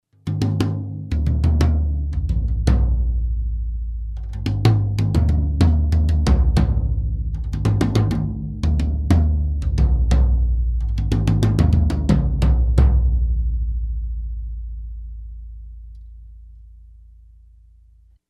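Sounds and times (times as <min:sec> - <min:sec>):
tom drums: 0:00.2 - 0:03.4, 0:04.1 - 0:13.6.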